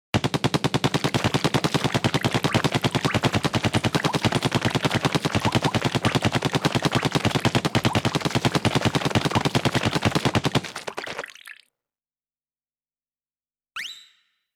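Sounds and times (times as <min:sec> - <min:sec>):
splat shooter firing: 0:00.2 - 0:11.4.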